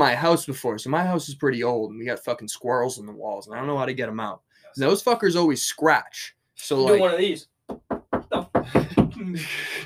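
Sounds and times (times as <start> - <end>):
speech: 0.0 - 7.8, 8.6 - 9.8
firm knocks on a wall of an old house: 7.7 - 9.2.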